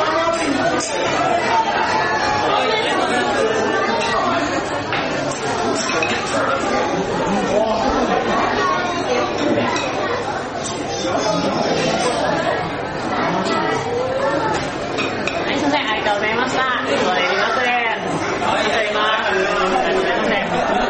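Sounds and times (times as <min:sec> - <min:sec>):
murmur of many voices in a conveyor-belt sushi restaurant: 0:00.0 - 0:20.8.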